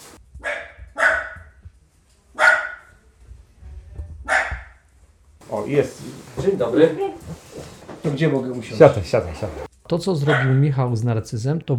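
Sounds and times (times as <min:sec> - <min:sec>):
dog barking in greeting: 0:00.4 - 0:01.6, 0:02.4 - 0:03.0, 0:04.3 - 0:04.8, 0:10.2 - 0:10.6
speech: 0:05.5 - 0:07.5, 0:08.1 - 0:11.7.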